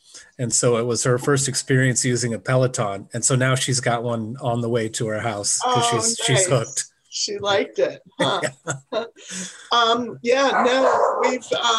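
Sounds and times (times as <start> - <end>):
speech: 0.4 - 11.7
laughter: 5.7 - 6.8, 7.5 - 11.7
dogs barking: 10.5 - 11.7.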